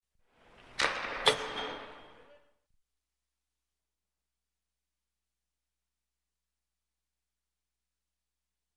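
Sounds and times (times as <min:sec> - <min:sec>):
hockey slap shot: 0:00.6 - 0:02.0.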